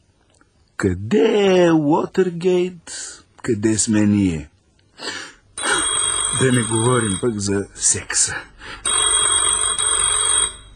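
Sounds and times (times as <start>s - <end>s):
speech: 0.8s - 5.3s, 6.3s - 8.9s
telephone ringing with an electronic trill: 5.6s - 7.6s, 8.8s - 10.7s.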